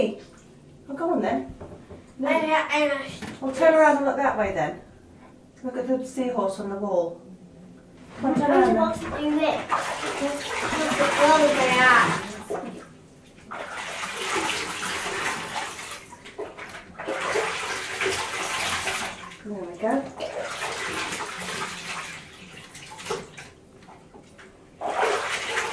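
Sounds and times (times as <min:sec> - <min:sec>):
speech: 0:00.0 - 0:00.3, 0:00.9 - 0:04.9, 0:05.6 - 0:07.3, 0:08.2 - 0:12.8, 0:19.4 - 0:20.5
water poured over a child's hair in a bath: 0:08.8 - 0:24.1, 0:24.8 - 0:25.7.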